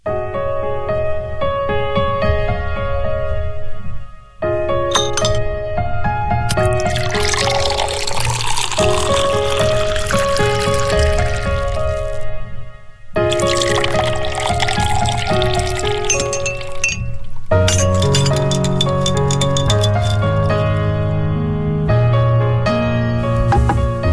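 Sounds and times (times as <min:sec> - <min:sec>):
music: 0:00.0 - 0:24.1
liquid pouring and sloshing as a cocktail is mixed: 0:06.5 - 0:12.3, 0:13.2 - 0:20.9.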